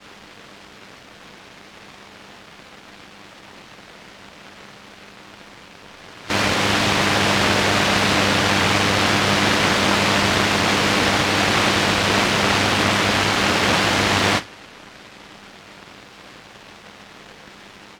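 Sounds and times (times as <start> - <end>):
retro radio static: 6.3 - 14.4.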